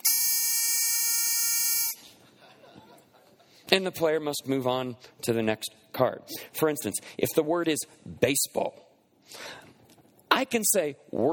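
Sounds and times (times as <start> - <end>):
harsh electronic game buzzer in a word-guessing card game: 0.0 - 2.0
laughter: 2.1 - 3.4
speech: 3.7 - 9.6, 10.4 - 11.3.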